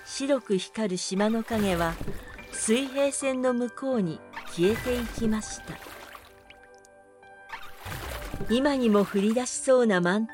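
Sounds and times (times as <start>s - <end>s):
oars rowing a small boat through the sea at night: 0.0s - 3.4s, 4.4s - 6.8s, 7.5s - 9.5s
speech: 0.2s - 5.9s, 8.4s - 10.3s.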